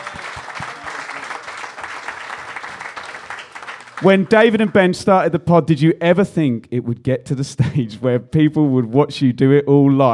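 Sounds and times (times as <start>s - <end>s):
audience applause from a crowd: 0.0s - 4.9s
speech: 4.0s - 10.1s.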